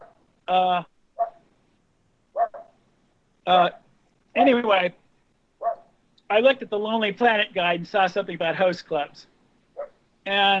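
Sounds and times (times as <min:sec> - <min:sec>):
speech: 0:00.5 - 0:00.9, 0:03.4 - 0:03.8, 0:04.4 - 0:05.0, 0:06.3 - 0:09.3, 0:10.3 - 0:10.5
dog barking and yipping in the background: 0:01.2 - 0:01.4, 0:02.4 - 0:02.8, 0:05.6 - 0:05.9.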